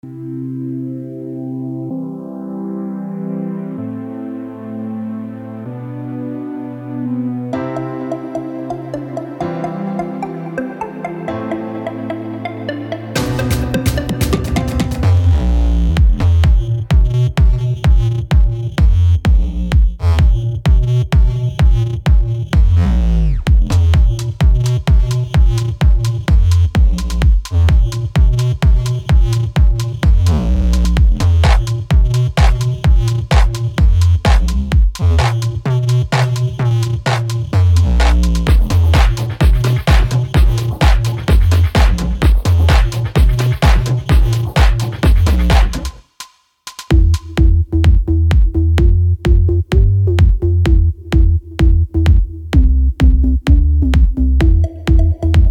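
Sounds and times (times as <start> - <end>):
bass shuffle groove: 13.2 - 46.0, 46.6 - 55.4.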